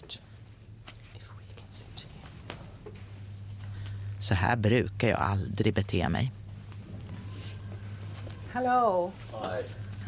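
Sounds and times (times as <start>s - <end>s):
low steady hum: 0.0s - 10.0s
person whispering hushed phrases: 1.0s - 2.1s
speech: 4.3s - 6.4s, 8.6s - 10.0s.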